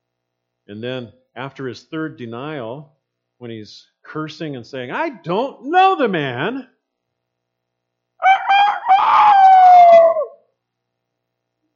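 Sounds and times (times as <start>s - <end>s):
speech: 0.7s - 6.7s
single rooster crowing: 8.2s - 10.4s.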